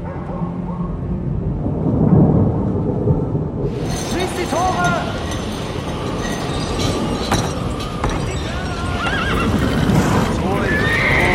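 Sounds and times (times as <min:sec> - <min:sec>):
deep rolling thunder in a storm: 0:00.6 - 0:11.3.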